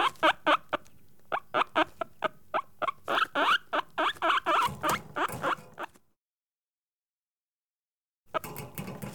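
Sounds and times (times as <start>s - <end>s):
caged guinea pig squeaking: 0.0s - 6.0s.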